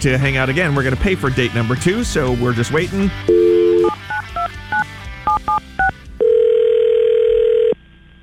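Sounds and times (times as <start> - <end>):
speech: 0.0 - 3.4
touch-tone phone keypad beeps: 3.3 - 6.4
ringback tone of an outgoing phone call: 3.3 - 7.8.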